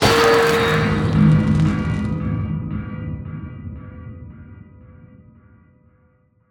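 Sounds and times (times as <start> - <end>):
trident thunder: 0.0 - 3.5.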